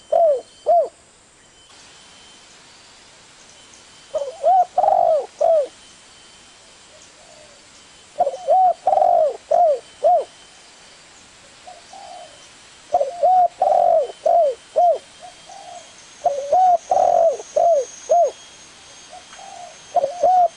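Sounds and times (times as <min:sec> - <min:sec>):
spotted dove cooing as a lure call: 0:00.0 - 0:01.0, 0:04.1 - 0:05.8, 0:08.2 - 0:10.4, 0:11.6 - 0:18.4, 0:19.1 - 0:20.5.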